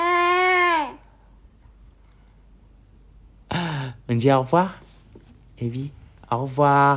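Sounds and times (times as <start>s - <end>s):
baby wailing cry: 0.0s - 1.1s
speech: 4.2s - 4.8s, 5.6s - 6.9s.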